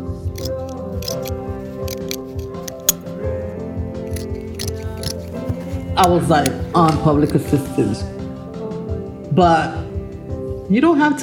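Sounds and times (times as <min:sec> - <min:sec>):
scissors snipping through fabric: 0:00.4 - 0:01.3, 0:01.9 - 0:03.0, 0:04.1 - 0:05.4
speech: 0:06.0 - 0:08.1, 0:09.4 - 0:09.8, 0:10.7 - 0:11.2.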